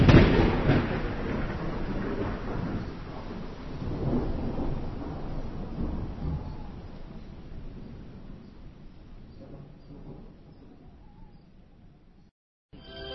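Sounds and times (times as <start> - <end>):
rainy hiss in a thunderstorm: 0.0 - 10.2
deep rolling thunder in a thunderstorm: 0.0 - 12.2.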